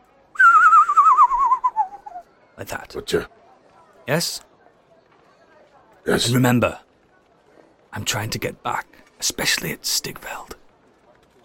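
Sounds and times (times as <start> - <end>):
person whistling one long steady warbling note as a signal: 0.4 - 2.2
speech: 2.6 - 3.4, 4.1 - 4.5, 6.0 - 6.8, 7.9 - 10.6.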